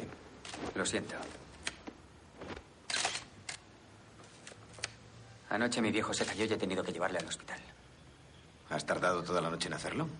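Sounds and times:
speech: 0.8s - 1.5s, 5.5s - 7.8s, 8.7s - 10.1s
camera shutter clicking while taking photos from a window: 2.8s - 3.6s.

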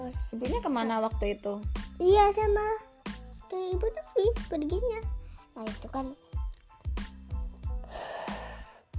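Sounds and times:
speech: 0.1s - 2.9s, 3.5s - 6.2s
sharp breaths drawn in: 7.8s - 8.9s.

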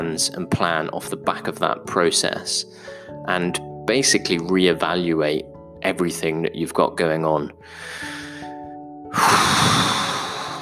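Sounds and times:
speech: 0.0s - 8.1s, 9.1s - 9.8s
person taking a deep breath: 7.6s - 10.6s.

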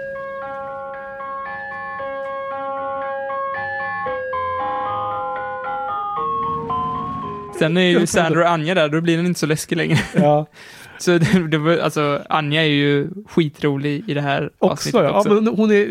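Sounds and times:
ice cream truck jingle: 0.0s - 8.4s
faint low rumble of traffic: 0.4s - 8.4s
laughter: 7.6s - 8.6s, 9.6s - 10.4s
speech: 7.6s - 15.8s.

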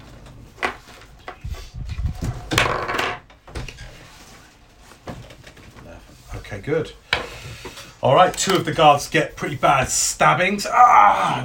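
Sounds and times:
wooden door creaking and rattling: 0.0s - 4.0s
speech: 6.6s - 7.0s, 8.0s - 11.4s.

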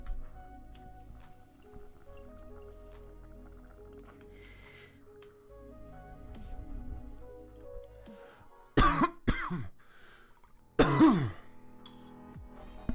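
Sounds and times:
bong water bubbling: 1.2s - 4.5s
person coughing harshly after a bong hit: 8.8s - 9.8s, 10.8s - 11.5s.

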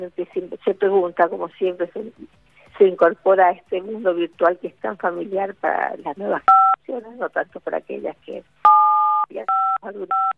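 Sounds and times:
speech: 0.0s - 8.7s, 9.3s - 10.3s
telephone keypad tones: 8.7s - 10.3s.

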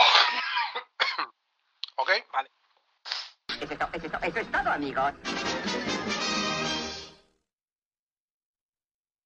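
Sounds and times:
raspy hacking cough: 0.0s - 1.3s
speech: 2.1s - 2.6s, 3.6s - 6.7s.

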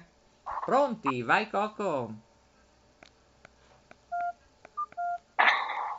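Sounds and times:
speech: 0.7s - 2.3s
touch-tone telephone keypad beeps dialing a number: 4.1s - 5.2s.

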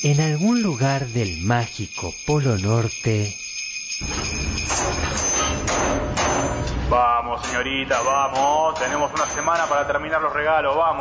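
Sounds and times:
speech: 0.0s - 5.3s, 6.9s - 10.9s
dense steady din of banging in a workshop: 4.0s - 10.3s
hammer blows in a workshop: 4.0s - 10.4s.

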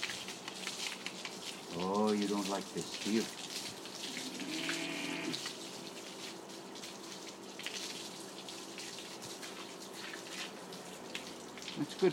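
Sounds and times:
water running from a tap: 1.3s - 12.1s
speech: 1.8s - 3.4s, 12.0s - 12.1s
brief tonal squeal as the water flow shifts: 4.0s - 5.5s.

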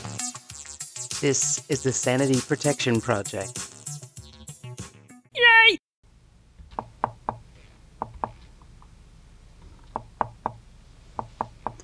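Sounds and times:
speech: 1.2s - 3.7s
knocking on a door: 6.6s - 7.4s, 8.0s - 8.4s, 9.9s - 10.6s.

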